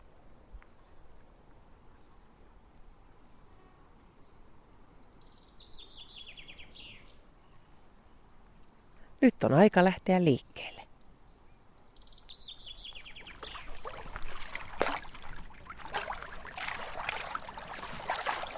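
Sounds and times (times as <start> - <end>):
steady low rush of wind or water: 0.0 - 9.2, 10.6 - 18.5
birdsong of bright chirping notes on a fine morning after a storm: 4.9 - 7.7, 11.3 - 14.0
speech: 9.3 - 10.8.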